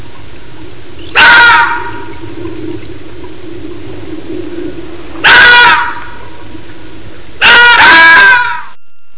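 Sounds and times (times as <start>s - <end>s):
fox: 1.0s - 2.9s, 4.0s - 6.5s, 7.4s - 8.8s.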